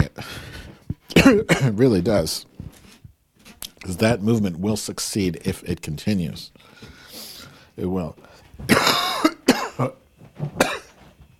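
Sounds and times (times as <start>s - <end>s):
person coughing and clearing phlegm from the throat: 1.1s - 1.8s, 8.7s - 11.0s
speech: 1.3s - 2.5s, 3.8s - 6.9s, 7.8s - 10.7s.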